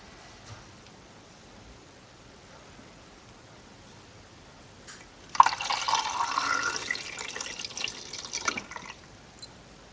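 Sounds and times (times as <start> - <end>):
developer liquid poured into film tank: 5.3 - 9.1.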